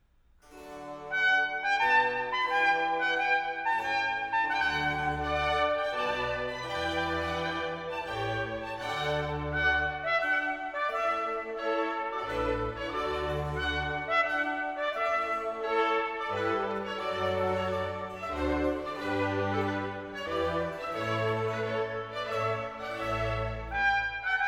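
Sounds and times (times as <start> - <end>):
strings: 0.4 - 24.4
trumpet: 0.6 - 24.4.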